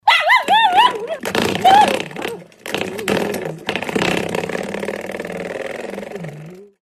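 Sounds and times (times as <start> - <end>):
chihuahua playing with door stop: 0.5 - 4.7.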